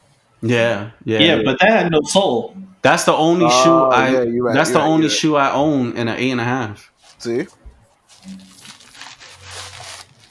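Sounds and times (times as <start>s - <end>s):
speech: 0.4s - 7.6s, 8.2s - 8.5s
paper being crumpled up: 8.0s - 10.3s.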